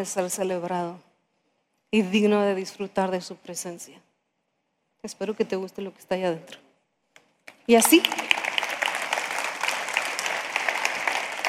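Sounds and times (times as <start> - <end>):
speech: 0.0 - 1.1, 1.9 - 4.1, 5.0 - 6.6, 7.7 - 8.2
audience applause: 7.8 - 11.4.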